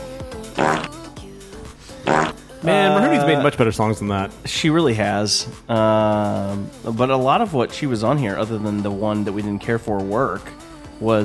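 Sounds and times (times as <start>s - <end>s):
buzzy fart sound effect: 0.6s - 1.0s, 2.0s - 2.4s
speech: 2.6s - 11.2s.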